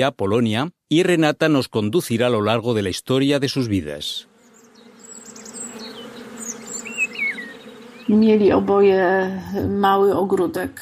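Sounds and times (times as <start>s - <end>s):
speech: 0.0s - 4.3s, 8.1s - 10.8s
small birds chirping faintly: 3.6s - 10.1s
honeybees buzzing around hives: 4.0s - 10.6s
voice speaking loudly: 8.1s - 10.7s.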